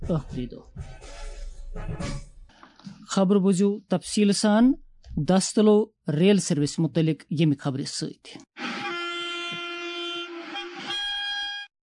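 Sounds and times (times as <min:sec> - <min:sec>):
speech: 0:00.1 - 0:01.0, 0:01.8 - 0:02.3, 0:03.1 - 0:08.6
express passenger train horn blast: 0:08.6 - 0:11.7.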